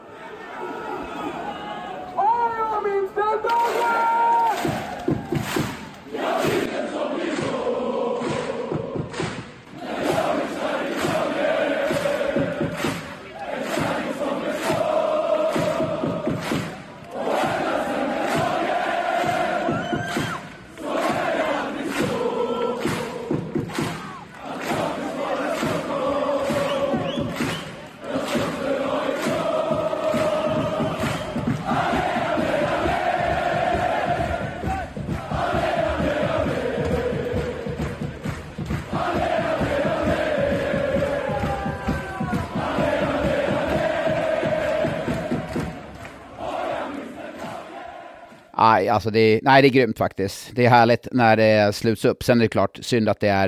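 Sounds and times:
large stadium crowd of football supporters chanting at a derby: 0.0 - 48.6
speech: 48.8 - 53.4.

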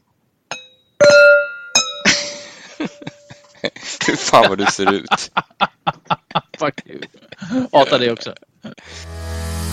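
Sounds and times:
wine glasses clinking in a toast: 0.5 - 3.4
laughter: 2.1 - 8.8
speech: 4.1 - 5.7, 6.6 - 8.4.

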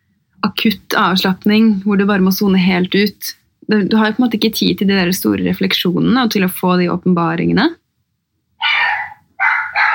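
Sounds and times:
speech: 0.6 - 7.8
dogs barking: 8.6 - 9.9.

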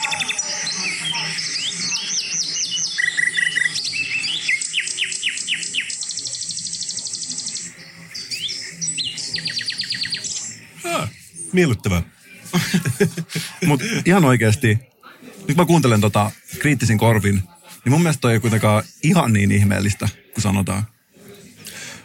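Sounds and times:
common nightingale singing: 0.0 - 11.9
laughter: 10.8 - 14.8
speech: 11.6 - 14.9, 15.5 - 21.0.

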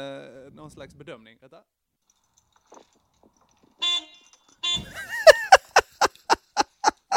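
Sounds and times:
speech: 0.0 - 1.8, 2.7 - 3.0
recorded car horn honking: 3.8 - 5.1
laughter: 4.9 - 7.1.

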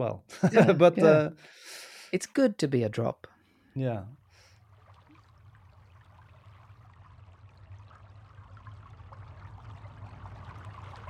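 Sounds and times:
speech: 0.0 - 4.2
laughter: 0.3 - 1.4
water from thawing ice and earth trickling and flowing: 3.4 - 11.0
low rumble: 6.7 - 11.0.

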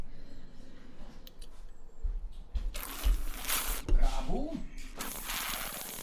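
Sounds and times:
wet slurping of wine drawn over the tongue: 2.8 - 3.9, 5.0 - 6.0.

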